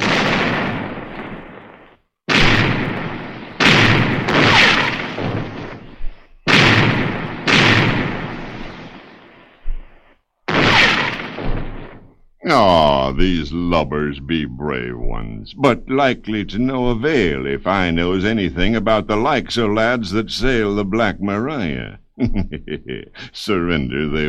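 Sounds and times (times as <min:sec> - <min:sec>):
cannon broadside fire from a pirate ship in a sea battle: 0:00.0 - 0:12.2
speech: 0:12.5 - 0:24.2
laughter: 0:22.2 - 0:24.2.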